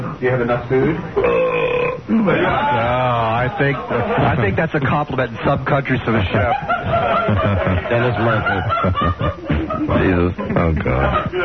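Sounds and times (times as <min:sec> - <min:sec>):
speech: 0:00.2 - 0:11.4
man burping loudly: 0:01.2 - 0:02.4
laughter: 0:02.1 - 0:04.8, 0:06.0 - 0:11.4.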